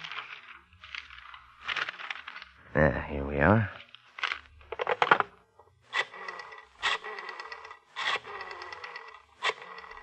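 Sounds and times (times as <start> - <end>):
pages of a telephone book being flipped through: 0.0 - 2.6, 3.9 - 5.3
speech: 2.8 - 3.8.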